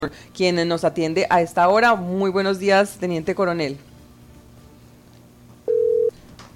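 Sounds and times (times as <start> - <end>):
speech: 0.0 - 3.9
telephone busy tone after a dropped call: 5.7 - 6.1.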